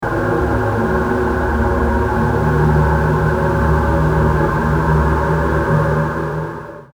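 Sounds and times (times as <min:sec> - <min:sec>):
dark and looming atmosphere: 0:00.0 - 0:06.9.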